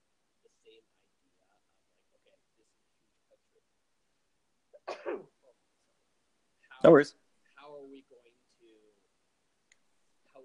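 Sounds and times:
person sneezing: 4.8s - 5.3s
speech: 6.8s - 7.2s.

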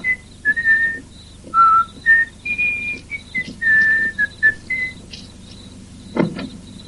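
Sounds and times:
man whistling a cheerful bouncy tune: 0.0s - 5.0s
faint low hum of an outdoor setting: 0.0s - 6.8s
brief thump: 6.2s - 6.5s.

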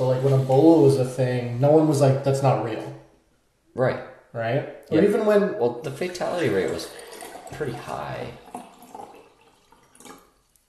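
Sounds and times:
speech: 0.0s - 3.0s, 3.8s - 8.4s
water being poured into a glass: 6.0s - 10.6s.

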